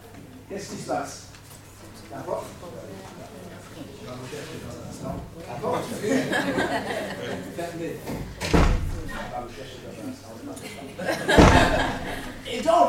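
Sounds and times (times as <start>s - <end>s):
people talking: 2.0s - 12.8s
people chuckling: 5.6s - 7.6s, 10.6s - 12.6s
door shutting with a heavy thud: 8.1s - 9.5s, 11.3s - 12.6s.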